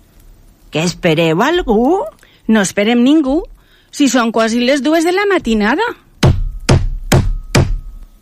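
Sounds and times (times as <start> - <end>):
speech: 0.7 - 6.0
firm knocks on a wooden door: 6.2 - 7.8.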